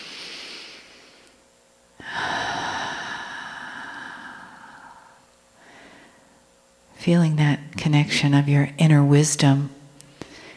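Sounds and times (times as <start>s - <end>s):
slow audible breath drawn in: 0.0s - 1.3s, 2.0s - 6.4s, 10.2s - 10.5s
speech: 7.0s - 9.8s.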